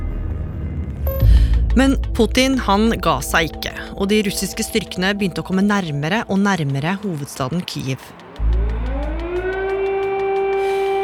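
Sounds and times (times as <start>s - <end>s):
steady low rumble: 0.0s - 6.4s, 8.4s - 9.6s
air raid siren wailing in Kyiv, Ukraine: 0.0s - 11.0s
speech: 1.8s - 8.6s.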